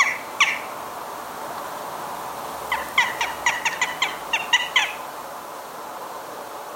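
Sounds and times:
western jackdaw chack calls in a garden: 0:00.0 - 0:00.8, 0:02.7 - 0:05.1.

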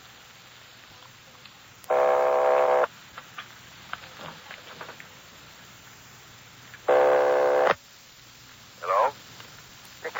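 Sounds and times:
faint telephone line hiss: 0:00.0 - 0:10.1
telephone ringback tone over the line: 0:01.9 - 0:02.9, 0:06.9 - 0:07.8.

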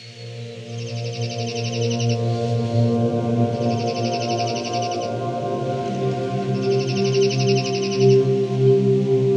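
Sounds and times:
slate-colored junco calling in dry buzzy trills: 0:00.0 - 0:02.3, 0:03.6 - 0:05.2, 0:06.5 - 0:08.3
steady low humming drone: 0:00.0 - 0:09.3.

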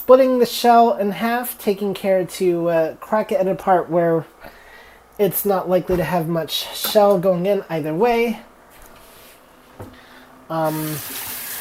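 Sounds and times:
speech: 0:00.1 - 0:04.6, 0:05.2 - 0:08.5, 0:09.8 - 0:11.2
water running from a kitchen tap while hands are washed: 0:10.6 - 0:11.5.

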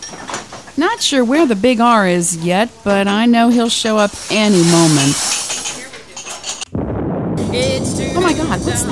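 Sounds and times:
dishes and cutlery clinking while unloading a dishwasher: 0:00.0 - 0:00.8, 0:02.4 - 0:06.7
speech: 0:00.8 - 0:05.4, 0:07.6 - 0:08.9
dense steady rumbling noise: 0:06.7 - 0:08.9.

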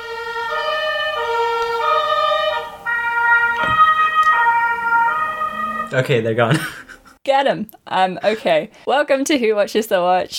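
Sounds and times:
broadband street noise: 0:00.0 - 0:06.2
ambulance siren wailing in two-tone pattern: 0:00.0 - 0:06.3
speech: 0:05.9 - 0:10.3
laughter: 0:06.4 - 0:07.2.

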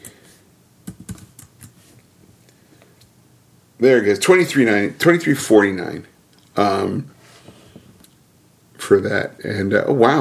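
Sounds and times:
typing on a computer keyboard: 0:00.8 - 0:01.8
speech: 0:03.8 - 0:07.2, 0:08.9 - 0:10.2.

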